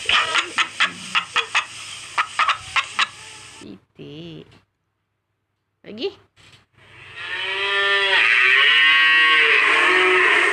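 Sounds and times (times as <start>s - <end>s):
chicken clucking: 0.0s - 3.6s
faint hiss: 0.0s - 4.1s
cow mooing: 7.0s - 10.5s.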